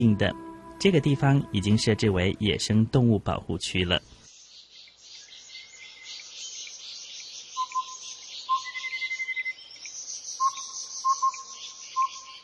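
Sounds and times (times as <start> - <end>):
speech: 0.0 - 4.2
bird trill: 4.4 - 12.4
bird whistles at Fushan Botanical Garden in Yilan: 7.6 - 9.6, 10.4 - 12.4.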